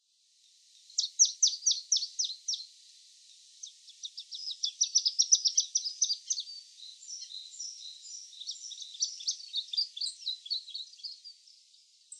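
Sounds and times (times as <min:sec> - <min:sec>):
Dusky Warbler calling: 0:01.0 - 0:02.7, 0:03.6 - 0:11.5.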